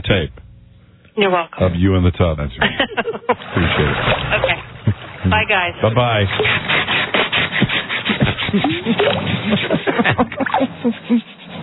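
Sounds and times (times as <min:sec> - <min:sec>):
speech: 0:00.1 - 0:00.4, 0:01.2 - 0:04.6, 0:05.2 - 0:07.0, 0:08.5 - 0:11.4
laughter: 0:02.6 - 0:05.0, 0:08.2 - 0:11.3
power tool sawing and grinding against wood: 0:05.9 - 0:11.6.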